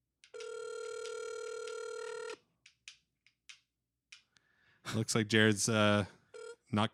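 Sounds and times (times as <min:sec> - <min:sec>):
bright electronic phone ringing tone: 0:00.3 - 0:02.4, 0:06.3 - 0:06.6
speech: 0:04.9 - 0:06.9.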